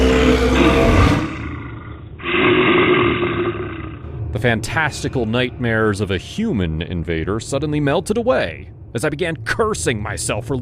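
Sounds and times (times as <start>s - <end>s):
grizzly bear roaring: 0.0s - 4.1s
speech: 4.4s - 10.6s.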